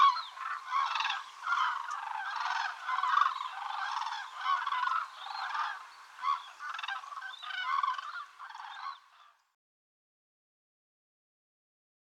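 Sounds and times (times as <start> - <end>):
flock of common cranes calling: 0.0 - 9.4.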